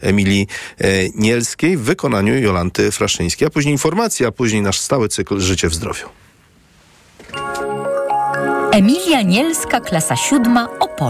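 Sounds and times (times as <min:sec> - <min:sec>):
speech: 0:00.0 - 0:06.3, 0:08.8 - 0:11.0
electronic school bell chiming a short melodic signal: 0:07.3 - 0:11.0.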